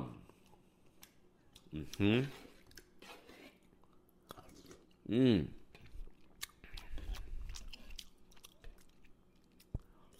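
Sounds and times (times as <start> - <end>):
person chewing dinner: 0.3 - 10.1
speech: 1.7 - 2.5, 5.1 - 5.6.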